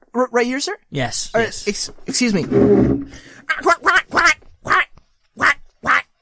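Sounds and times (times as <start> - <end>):
speech: 0.2 - 4.4
person doing a duck impression with nasal raspy quacks: 3.5 - 6.1.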